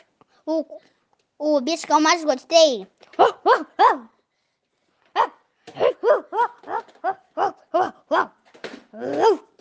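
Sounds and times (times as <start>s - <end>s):
speech: 0.5s - 4.1s, 7.8s - 8.4s, 9.0s - 9.4s
child imitating a dog barking: 3.2s - 4.2s, 5.2s - 8.4s, 9.0s - 9.5s.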